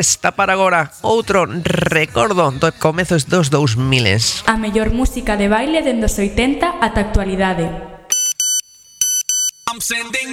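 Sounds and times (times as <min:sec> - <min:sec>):
speech: 0:00.0 - 0:07.9, 0:09.7 - 0:10.3
Nokia phone SMS notification tone: 0:08.1 - 0:09.9.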